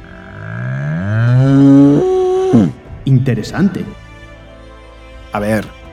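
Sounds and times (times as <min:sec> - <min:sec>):
cow mooing: 0:00.0 - 0:02.8
speech: 0:03.2 - 0:04.0, 0:05.4 - 0:05.8.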